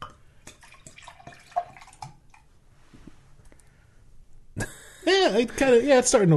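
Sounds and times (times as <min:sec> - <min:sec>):
beer pouring vigorously: 0:00.0 - 0:02.5
speech: 0:05.3 - 0:06.3.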